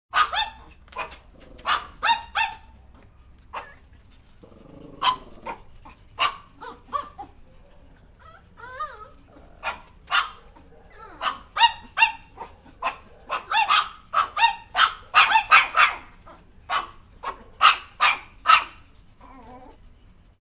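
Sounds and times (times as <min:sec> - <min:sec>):
Chihuahua barking: 0:00.1 - 0:02.8, 0:03.5 - 0:03.9, 0:05.0 - 0:07.4, 0:09.6 - 0:18.8.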